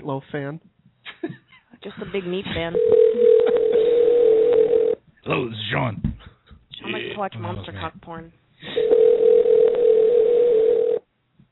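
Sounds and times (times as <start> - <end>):
speech: 0.1 - 3.6, 5.2 - 6.1, 6.9 - 9.0
telephone ringing tone while dialing a call: 2.8 - 5.0, 8.8 - 11.0.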